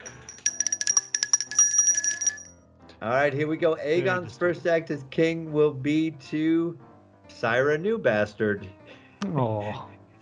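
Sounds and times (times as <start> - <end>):
small bright bell rung rapidly: 0.0 - 2.6
speech: 3.0 - 9.9.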